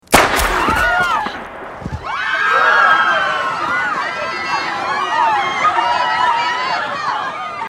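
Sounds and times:
gunshot: 0:00.0 - 0:02.4
crowd screaming: 0:00.5 - 0:07.6.

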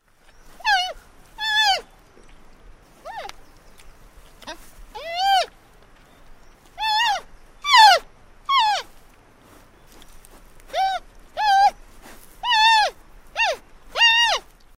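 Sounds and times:
baby panda: 0:04.4 - 0:05.5, 0:06.8 - 0:08.9, 0:10.7 - 0:11.8, 0:12.4 - 0:14.5.

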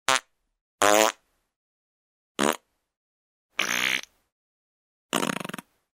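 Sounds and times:
person farting: 0:00.1 - 0:01.2, 0:02.4 - 0:02.7, 0:03.6 - 0:04.1, 0:05.1 - 0:05.7.

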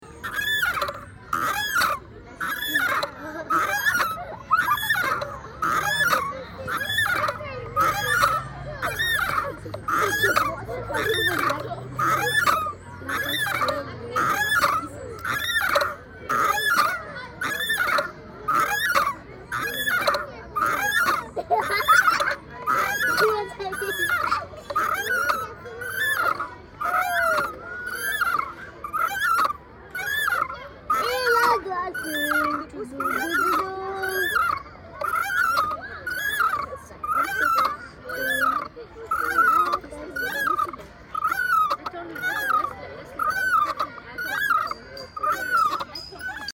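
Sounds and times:
swing creaking: 0:00.0 - 0:46.5.

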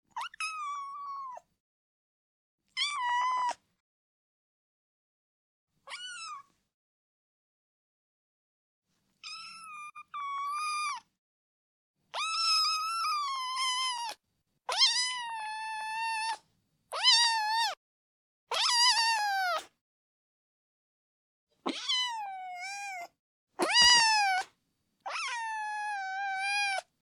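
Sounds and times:
kitten meowing: 0:00.1 - 0:01.4, 0:05.9 - 0:06.5, 0:09.2 - 0:11.0, 0:12.2 - 0:17.8, 0:18.5 - 0:19.7, 0:21.7 - 0:24.5, 0:25.1 - 0:26.9.

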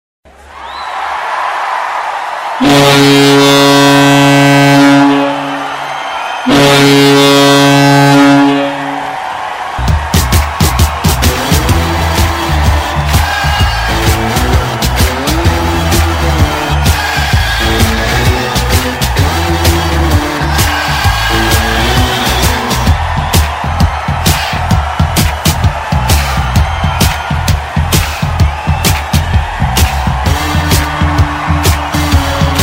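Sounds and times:
crowd shouting joyfully at a goal: 0:00.4 - 0:32.6
siren at a goal: 0:02.6 - 0:09.0.

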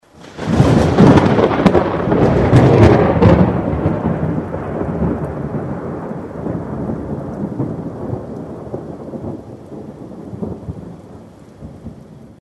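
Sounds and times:
lightning strike: 0:00.2 - 0:09.8.

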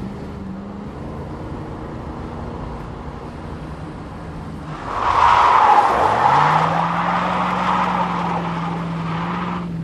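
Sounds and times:
car skidding with tires squealing: 0:04.6 - 0:09.7.

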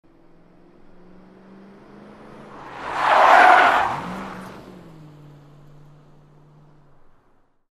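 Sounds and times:
car tyres squealing while drifting: 0:02.3 - 0:05.0.

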